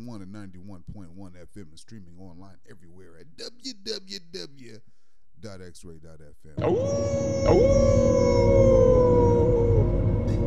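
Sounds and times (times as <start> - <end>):
speech: 0.0 - 8.8
wolf howling: 6.6 - 10.4.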